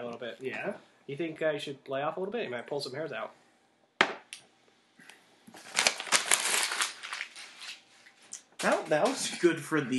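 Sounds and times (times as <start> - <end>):
speech: 0.3 - 3.4, 8.6 - 9.9
sheet of paper with ideas written on it being crumpled: 5.6 - 9.2.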